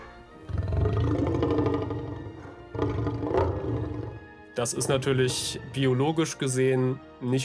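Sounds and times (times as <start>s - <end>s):
monstrous dinosaur-like roar blending elephant and lion sounds: 0.5s - 5.4s
speech: 4.6s - 7.4s.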